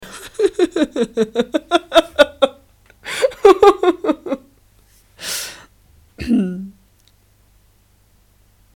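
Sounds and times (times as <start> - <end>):
laughter: 0.0 - 4.5
person clearing voice: 6.2 - 6.8.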